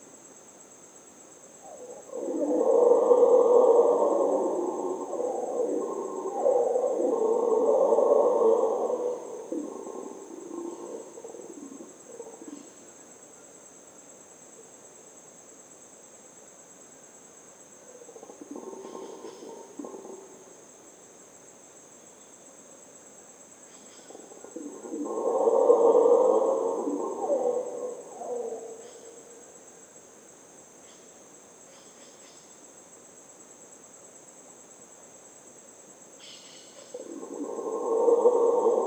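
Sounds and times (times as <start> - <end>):
Colombian red howler Alouatta seniculus howling: 1.6 - 12.6, 24.1 - 29.4, 36.9 - 38.8.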